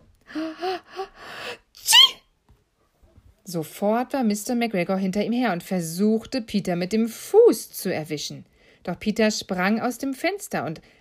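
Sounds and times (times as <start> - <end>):
acted sneeze with voiced inhales: 1.8 - 2.2
speech: 3.5 - 10.9.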